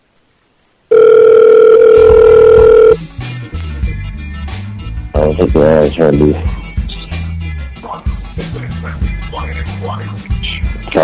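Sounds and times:
telephone dial tone: 0.9s - 3.0s
speech: 5.4s - 6.5s.

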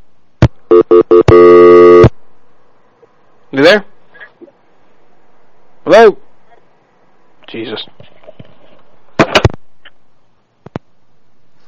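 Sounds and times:
steady telephone line tone after a call is hung up: 0.7s - 2.1s
speech: 3.6s - 3.8s.

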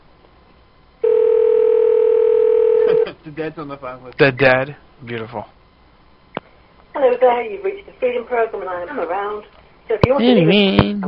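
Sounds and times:
cell phone call ring tone: 1.0s - 3.1s
speech: 3.3s - 5.6s, 7.0s - 11.0s.

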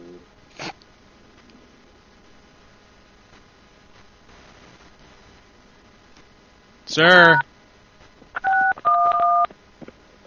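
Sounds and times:
speech: 6.9s - 7.5s
telephone keypad tones while dialing a number: 8.4s - 9.5s.

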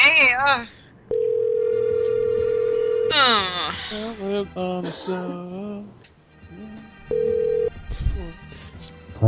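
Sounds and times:
speech: 0.3s - 0.8s, 3.1s - 9.2s
telephone ringing unanswered: 1.1s - 3.1s, 7.1s - 7.7s.

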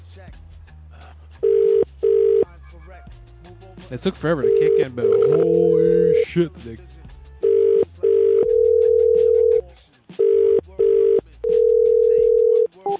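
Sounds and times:
telephone ringing with half American half British cadence: 1.4s - 2.4s, 4.4s - 6.3s, 7.4s - 9.6s, 10.2s - 12.9s
speech: 3.9s - 7.0s.

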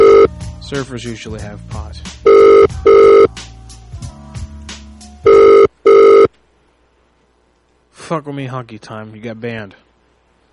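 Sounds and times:
telephone ringing with electronic double-burst rings: 0.0s - 0.3s, 2.2s - 3.3s, 5.2s - 6.3s
speech: 0.7s - 3.3s, 8.1s - 9.9s.

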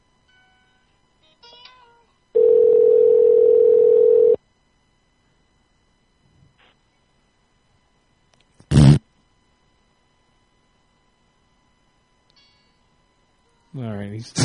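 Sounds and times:
telephone dial tone: 2.4s - 4.4s
speech: 13.8s - 14.4s.

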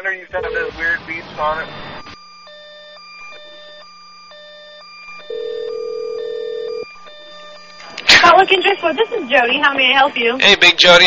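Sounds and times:
speech: 0.1s - 1.8s, 8.4s - 11.0s
electronic telephone tones of an outgoing call to Salt Lake: 0.3s - 0.8s, 1.7s - 7.8s.

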